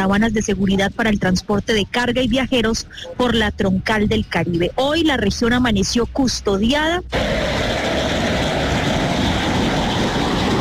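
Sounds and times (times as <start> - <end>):
speech: 0.0 - 7.4
fighter jets roaring overhead: 7.1 - 10.5.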